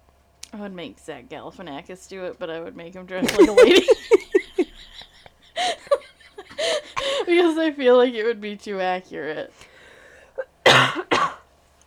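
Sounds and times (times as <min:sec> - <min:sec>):
speech: 0:00.5 - 0:04.2, 0:07.3 - 0:09.7
person coughing: 0:03.2 - 0:05.0, 0:10.6 - 0:11.4
laughter: 0:03.2 - 0:07.6.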